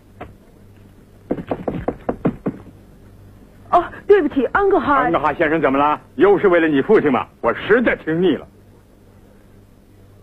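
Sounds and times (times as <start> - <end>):
knocking on a door: 1.3 - 2.8
speech: 3.8 - 8.5.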